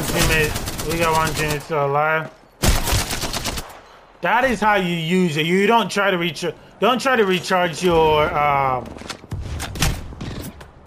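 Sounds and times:
rapid gunfire from a weapon in a battle royale video game: 0.0s - 1.6s, 2.6s - 3.7s
speech: 0.4s - 2.4s, 4.2s - 9.2s.

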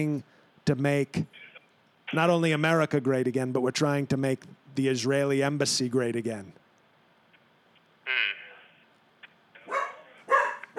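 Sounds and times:
speech: 0.0s - 1.5s, 2.1s - 6.6s
dog barking with short sharp barks: 9.6s - 10.7s.

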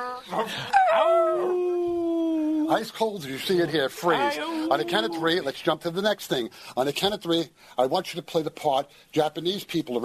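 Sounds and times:
person's voice imitating a big dog barking: 0.0s - 2.8s, 4.0s - 5.5s
speech: 0.2s - 1.7s, 2.7s - 10.0s.

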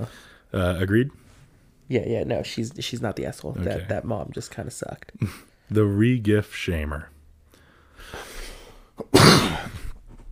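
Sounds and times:
speech: 0.0s - 1.2s, 1.9s - 7.2s
breathy inhale: 0.1s - 0.5s, 7.5s - 9.0s
harsh cough: 9.0s - 10.0s.

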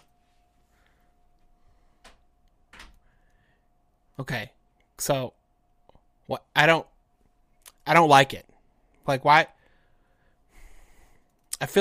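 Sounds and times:
faint steady hum: 0.0s - 11.7s
door being closed: 2.7s - 3.0s
speech: 4.2s - 5.4s, 6.3s - 6.9s, 7.9s - 9.6s, 11.6s - 11.7s.

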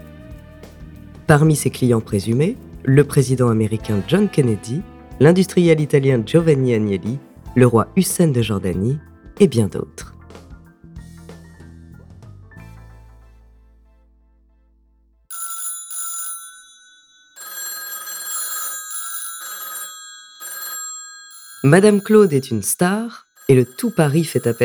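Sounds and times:
music: 0.0s - 15.3s
speech: 1.3s - 10.1s, 21.6s - 24.6s
two telephones ringing in an apartment on rue Marignan: 15.3s - 24.6s.

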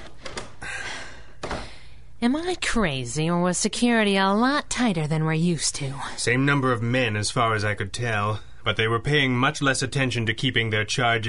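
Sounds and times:
door brief smooth slide or creak: 0.0s - 0.6s
speech: 2.2s - 11.2s.

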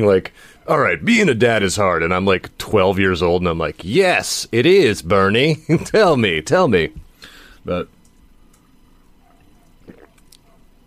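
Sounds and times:
speech: 0.0s - 7.0s, 7.6s - 8.0s
liquid clicks and mouth noises: 9.7s - 10.5s
gulp of water swallowed: 9.8s - 10.4s.

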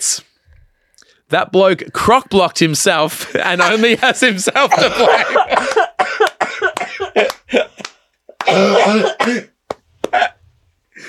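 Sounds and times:
speech: 1.3s - 6.2s, 7.2s - 7.6s
laughter: 3.1s - 9.4s
person in a harsh coughing fit: 4.7s - 10.4s.

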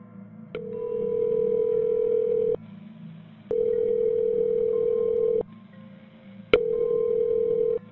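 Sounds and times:
long steady ringback tones through a phone line: 0.6s - 2.6s, 3.5s - 5.4s, 6.6s - 7.8s.

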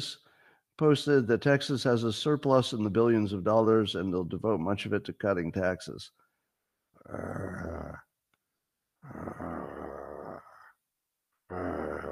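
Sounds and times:
speech: 0.0s - 0.2s, 0.8s - 6.2s, 7.0s - 8.1s, 9.0s - 9.9s
man growling loudly and raspily in frustration: 7.0s - 8.1s, 9.0s - 10.8s, 11.5s - 12.1s.

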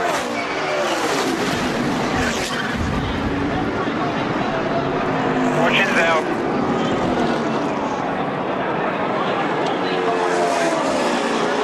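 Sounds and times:
stock cars racing four deep at Talladega Superspeedway in Alabama: 0.0s - 11.6s
huge stock car wreck at Talladega Superspeedway: 1.1s - 4.2s
voices: 2.1s - 11.6s.

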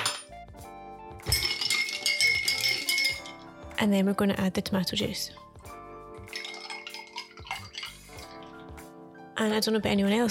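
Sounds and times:
ice clinking in a glass while stirring a Bloody Mary: 0.0s - 0.3s, 1.2s - 3.5s, 6.3s - 8.5s
speech: 3.8s - 5.5s, 9.4s - 10.2s.

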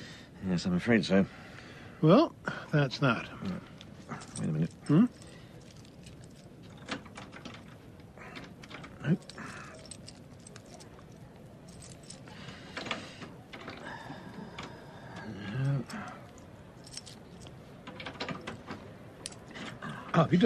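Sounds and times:
speech: 0.4s - 5.3s, 9.0s - 9.3s, 20.2s - 20.4s
key forced and twisted in a door lock: 4.4s - 14.9s, 15.8s - 19.8s.

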